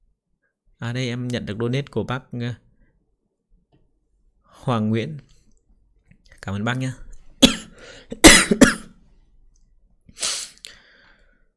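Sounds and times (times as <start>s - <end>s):
speech: 0.8s - 2.6s, 4.6s - 5.4s, 6.4s - 7.5s, 8.1s - 8.8s
person coughing: 7.4s - 9.0s.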